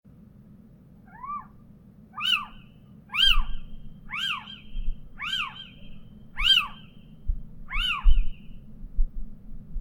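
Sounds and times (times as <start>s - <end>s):
little owl calling: 1.0s - 8.6s.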